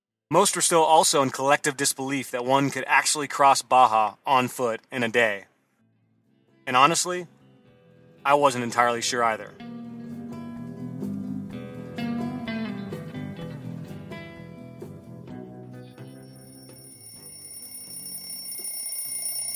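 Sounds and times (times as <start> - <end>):
speech: 0.3 - 5.5, 6.7 - 7.4, 8.2 - 9.8
alarm clock ringing with a bright repeating electronic melody: 16.0 - 19.5
thin high tone: 16.0 - 19.5.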